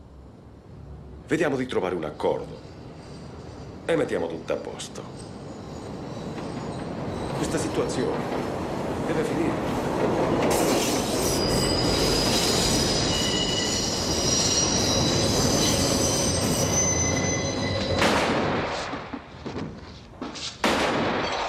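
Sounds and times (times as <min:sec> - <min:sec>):
train rumbling past: 0:00.0 - 0:20.2
speech: 0:01.3 - 0:02.7, 0:03.9 - 0:05.4, 0:07.4 - 0:10.8
train wheels squealing: 0:01.9 - 0:08.1, 0:10.4 - 0:18.1.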